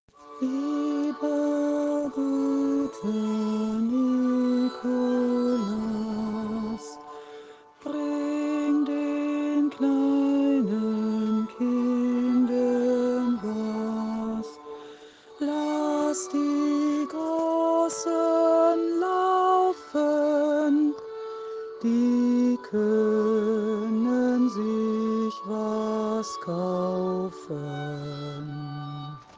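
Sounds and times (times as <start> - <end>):
person singing a song: 0.1 - 29.3.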